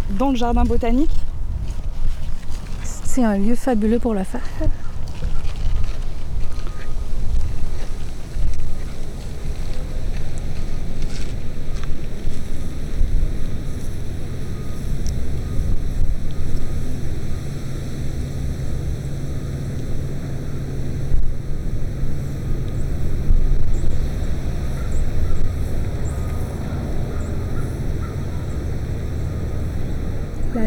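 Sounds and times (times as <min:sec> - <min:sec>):
wind blowing outdoors in a botanical garden: 0:00.0 - 0:30.6
speech: 0:00.1 - 0:01.3, 0:03.2 - 0:04.8
faint high buzzing: 0:06.5 - 0:30.6.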